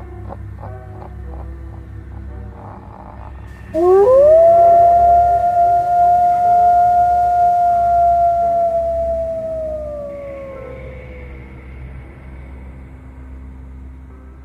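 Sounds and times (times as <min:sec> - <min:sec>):
wolf howling: 0:02.6 - 0:11.8.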